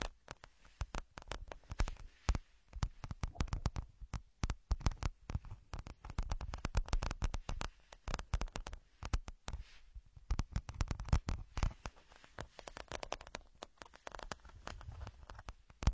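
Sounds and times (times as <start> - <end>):
ear picking crackles, scratches and clicks: 0.0 - 15.9
louder pops: 0.0 - 15.9.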